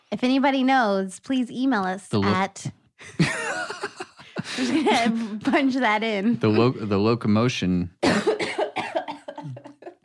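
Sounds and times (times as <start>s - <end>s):
speech: 0.1s - 3.7s, 4.6s - 8.3s
laughter: 3.0s - 7.0s, 9.3s - 10.0s
woman coughing into her hand: 8.0s - 9.7s.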